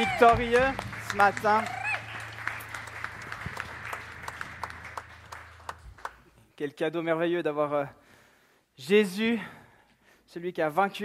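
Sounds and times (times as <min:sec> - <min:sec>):
speech: 0:00.0 - 0:01.8, 0:06.6 - 0:08.0, 0:08.8 - 0:09.6, 0:10.3 - 0:11.0
congregation applauding at a morning church worship service: 0:00.0 - 0:06.5
low hum: 0:00.6 - 0:06.6.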